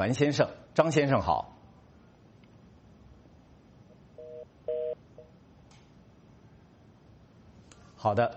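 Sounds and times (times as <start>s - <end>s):
speech: 0.0s - 1.6s, 8.0s - 8.3s
telephone line connecting tones: 4.2s - 5.0s.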